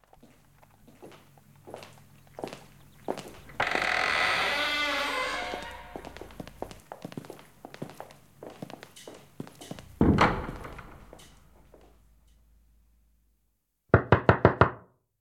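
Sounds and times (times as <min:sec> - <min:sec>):
footsteps: 0:00.0 - 0:12.0
heavy thud: 0:09.9 - 0:11.1
loud sharp knocks on a door: 0:13.9 - 0:14.9.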